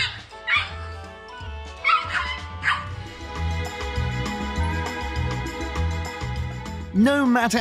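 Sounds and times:
small dog barking: 0.0s - 0.8s, 1.8s - 2.9s
music: 0.0s - 7.5s
speech: 7.0s - 7.5s.

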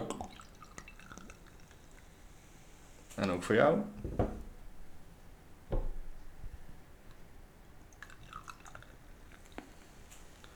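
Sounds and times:
beer from a freshly opened bottle pouring into a glass: 0.0s - 3.5s, 7.8s - 10.5s
beer fizzing in a glass: 0.0s - 4.5s, 7.1s - 10.5s
speech: 3.2s - 4.2s.

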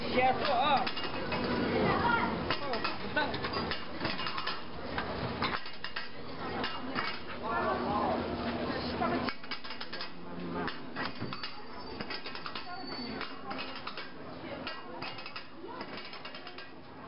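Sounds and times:
murmur of voices at an outdoor market stall in Xi'an: 0.0s - 17.0s
pots and utensils clinking at an outdoor market stall in Xi'an: 0.2s - 1.6s, 2.5s - 7.4s, 9.2s - 16.8s.

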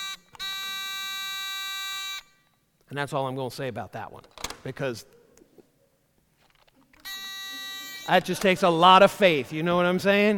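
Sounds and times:
harsh electronic buzzer: 0.0s - 2.4s, 7.0s - 8.2s
speech: 2.9s - 5.2s, 8.1s - 10.3s.

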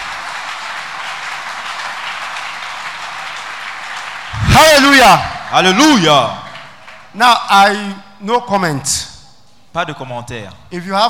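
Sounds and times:
crowd applause: 0.0s - 7.2s
speech: 4.6s - 6.4s, 7.2s - 9.1s, 9.8s - 11.0s.

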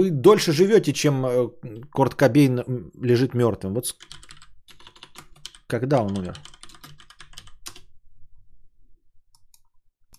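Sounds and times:
speech: 0.0s - 4.2s, 5.7s - 6.5s
typing a web search on a computer keyboard: 3.9s - 7.9s.

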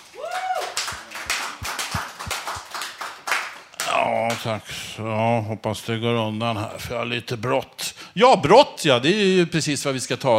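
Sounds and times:
small group applauding a studio guest: 0.0s - 4.5s
whoop or whistle: 0.1s - 0.9s
speech: 4.0s - 10.3s.

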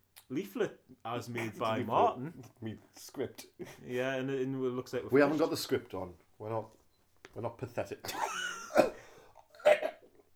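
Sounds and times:
speech: 0.3s - 6.8s, 7.4s - 8.4s
person coughing: 8.7s - 9.0s, 9.6s - 10.0s.

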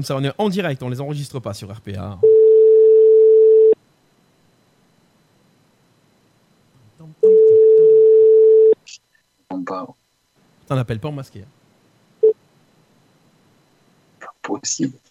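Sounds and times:
speech: 0.0s - 2.3s, 9.5s - 10.0s, 10.7s - 11.6s, 14.4s - 15.0s
telephone ringback tone after dialing a number: 2.2s - 3.8s, 7.2s - 8.8s.

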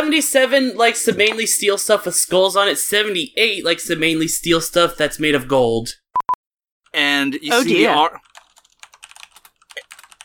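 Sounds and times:
speech: 0.0s - 6.0s, 6.9s - 8.2s
computer keyboard clicking: 8.2s - 10.2s.

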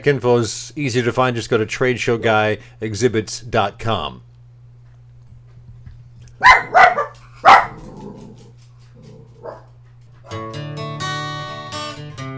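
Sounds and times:
speech: 0.0s - 4.3s
sustained tonal hum with rich harmonics: 0.0s - 10.2s
dog barking: 6.4s - 8.4s, 9.0s - 10.4s.

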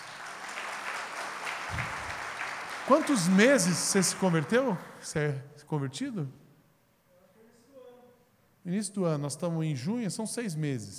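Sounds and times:
crowd applauding: 0.0s - 5.1s
speech: 2.9s - 6.4s, 8.7s - 10.9s.

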